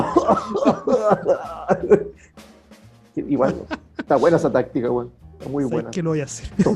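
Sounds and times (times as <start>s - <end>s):
person deliberately acting out a coughing fit: 0.0s - 2.2s
laughter: 0.0s - 2.3s, 3.2s - 4.7s, 6.4s - 6.7s
speech: 0.3s - 2.3s, 3.2s - 6.7s.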